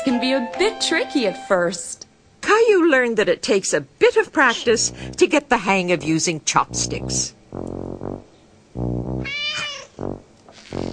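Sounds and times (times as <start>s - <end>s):
speech: 0.1s - 2.0s, 2.6s - 7.8s
cat meowing: 9.2s - 10.0s.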